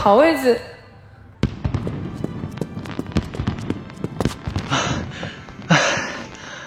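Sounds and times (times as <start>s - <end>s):
speech: 0.0s - 0.8s
fireworks popping and thudding outdoors: 1.4s - 6.6s.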